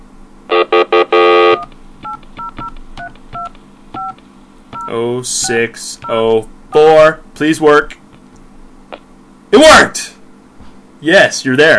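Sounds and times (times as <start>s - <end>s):
touch-tone telephone keypad dialing beeps: 1.5s - 4.2s
speech: 4.9s - 8.0s, 9.5s - 10.1s, 11.0s - 11.7s.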